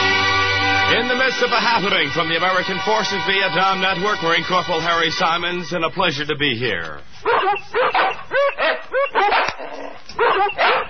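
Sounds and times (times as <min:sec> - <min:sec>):
speech: 0:00.9 - 0:10.8
dogs barking and yipping: 0:07.2 - 0:10.8.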